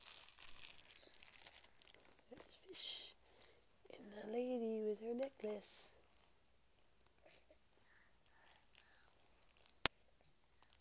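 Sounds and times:
crinkly fabric ear of a touch book being squeezed and rubbed: 0.0s - 3.9s, 5.5s - 7.2s, 8.3s - 9.9s
speech: 5.1s - 5.8s.

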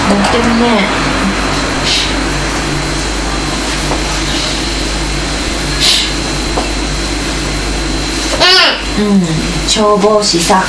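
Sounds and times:
blue electric train passing: 0.0s - 8.1s
speech: 0.4s - 2.0s, 8.5s - 10.6s.

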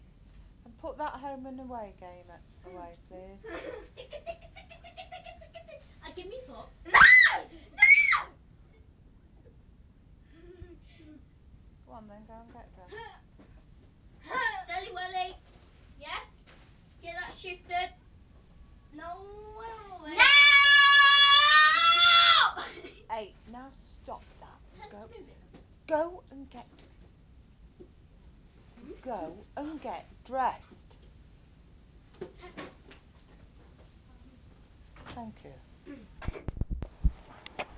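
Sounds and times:
speech: 1.0s - 4.3s, 11.9s - 13.5s, 24.9s - 26.8s, 28.9s - 30.8s, 35.2s - 36.5s
child screaming and squealing: 6.9s - 8.3s, 20.1s - 22.6s.

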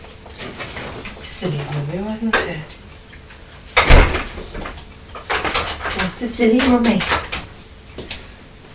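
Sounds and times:
speech: 1.2s - 2.8s, 6.2s - 7.2s
fridge door swinging shut with a solid thump: 3.8s - 4.4s.

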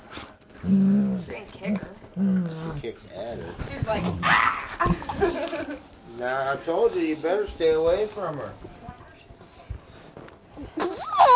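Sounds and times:
speech: 0.6s - 1.0s, 1.6s - 5.0s, 6.2s - 8.7s
dog growling moan: 0.6s - 2.9s.

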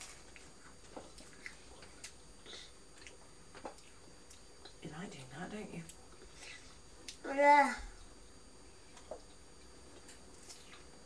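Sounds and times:
person chewing an apple: 0.0s - 4.6s, 8.9s - 11.0s
speech: 5.1s - 6.0s, 7.2s - 7.9s.

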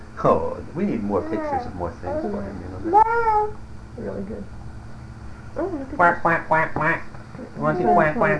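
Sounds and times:
speech: 0.2s - 4.6s, 5.5s - 8.3s
person imitating a duck with loud nasal quacks: 6.0s - 7.1s, 7.7s - 8.3s.

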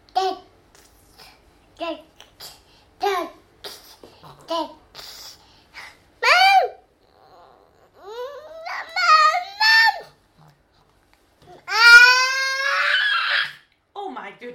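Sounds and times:
speech: 1.8s - 2.5s
toddler babbling yelps: 6.2s - 10.2s, 11.5s - 13.6s.

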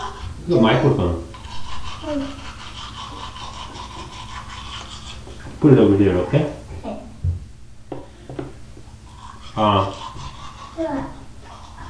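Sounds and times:
toothbrush scrubbing teeth: 0.0s - 6.0s, 9.0s - 11.8s
speech: 0.5s - 1.3s, 2.0s - 2.5s, 5.6s - 7.0s, 9.6s - 10.0s, 10.8s - 11.2s
child's voice: 2.0s - 2.4s, 10.8s - 11.3s.

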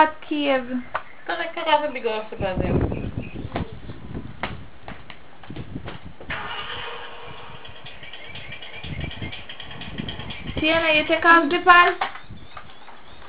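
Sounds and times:
speech: 0.0s - 3.2s, 10.6s - 12.2s
car engine cranking with sharp clicks: 6.3s - 11.2s.

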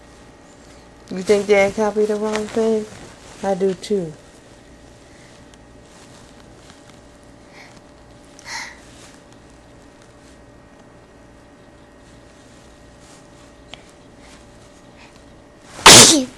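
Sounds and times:
speech: 1.1s - 4.2s
person sneezing: 15.8s - 16.3s.

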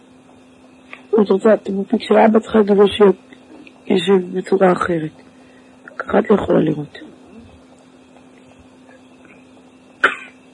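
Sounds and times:
faint steady hum: 0.0s - 10.5s
speech: 1.2s - 3.3s, 3.9s - 5.2s, 6.1s - 7.1s
person sneezing: 10.0s - 10.4s.

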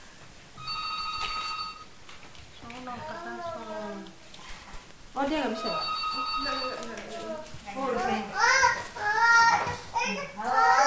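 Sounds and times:
noise: 0.0s - 10.8s
telephone ringing with a trilling electronic burst: 0.6s - 2.0s, 5.5s - 7.2s
speech: 2.9s - 3.4s, 5.2s - 7.0s.

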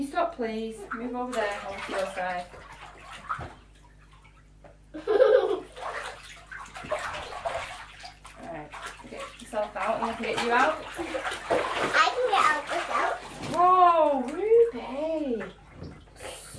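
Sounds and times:
speech: 0.0s - 2.7s, 4.9s - 5.3s, 9.5s - 15.6s
child splashing water in a bathtub: 0.0s - 16.5s
child's voice: 11.9s - 13.2s.

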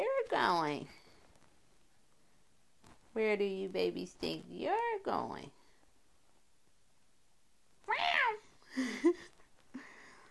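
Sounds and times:
speech: 0.3s - 1.0s, 3.2s - 5.6s, 8.8s - 9.4s
cat meowing: 7.9s - 8.5s.

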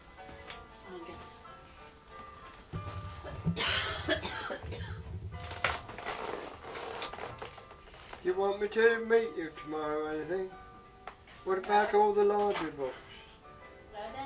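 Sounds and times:
low steady hum: 0.9s - 11.0s
short dry coughs: 3.3s - 5.1s
speech: 8.3s - 10.6s, 11.4s - 13.0s.

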